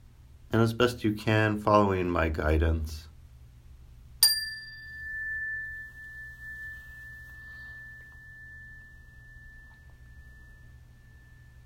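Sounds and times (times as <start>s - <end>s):
faint low hum: 0.0s - 11.6s
speech: 0.5s - 3.1s
meditation bell ringing: 4.2s - 11.6s.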